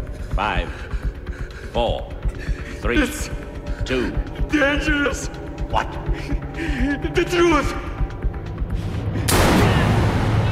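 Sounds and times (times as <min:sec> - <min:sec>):
low rumbling background: 0:00.0 - 0:10.4
speech: 0:00.4 - 0:00.9, 0:01.7 - 0:07.9
gunshot into a man's chest in an audio drama: 0:09.2 - 0:10.4.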